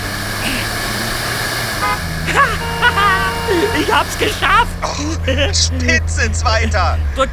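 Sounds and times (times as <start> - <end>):
car engine humming while overtaking on the road shoulder: 0.0 - 7.3
car horn toots: 1.8 - 4.8
laughter: 2.2 - 7.1
speech: 3.8 - 7.3.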